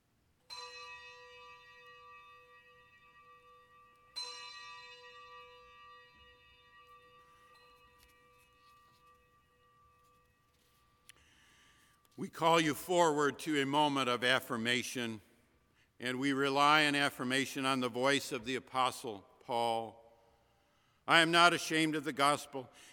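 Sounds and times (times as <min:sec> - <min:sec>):
soft bell chimes: 0:00.5 - 0:11.1
speech: 0:12.2 - 0:15.3, 0:16.0 - 0:20.0, 0:21.1 - 0:22.9.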